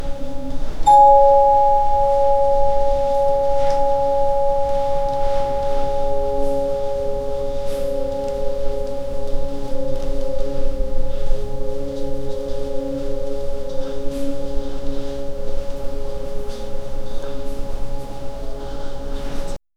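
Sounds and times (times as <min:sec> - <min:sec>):
soft twinkling fairy lights: 0:00.0 - 0:19.6.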